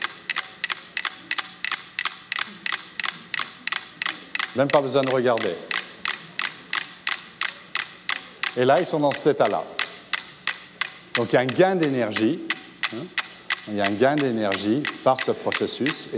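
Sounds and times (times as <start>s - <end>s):
several metronomes ticking in sharp clicks falling into sync: 0.0s - 16.1s
speech: 4.6s - 5.7s, 8.6s - 9.8s, 11.2s - 16.1s.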